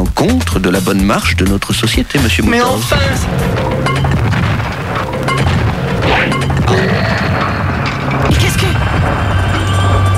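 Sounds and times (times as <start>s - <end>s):
speech: 0.2s - 4.1s
building blown up with plastic explosive: 2.3s - 10.1s
crashing debris: 2.5s - 10.1s.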